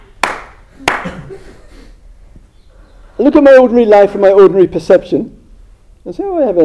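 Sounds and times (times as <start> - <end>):
sharp hand claps in a quiet room: 0.0 - 1.2
speech: 1.0 - 1.8, 3.2 - 5.4, 6.0 - 6.6.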